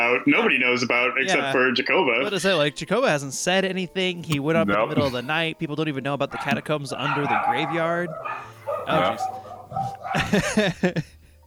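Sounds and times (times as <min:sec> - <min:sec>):
speech: 0:00.1 - 0:11.2
laughter: 0:04.8 - 0:05.4, 0:06.4 - 0:08.1, 0:08.8 - 0:11.4
dog barking: 0:06.3 - 0:10.4.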